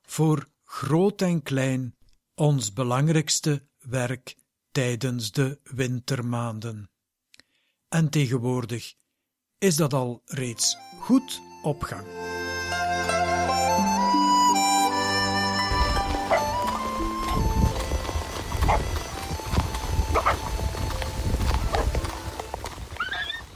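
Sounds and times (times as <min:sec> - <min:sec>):
speech: 0:00.2 - 0:06.9, 0:07.9 - 0:09.0, 0:09.6 - 0:12.8
sustained tonal music: 0:10.6 - 0:22.5
horse hooves clip-clopping on hard ground: 0:15.4 - 0:23.5
horse whinnying: 0:16.1 - 0:17.4, 0:20.1 - 0:20.6, 0:23.0 - 0:23.5.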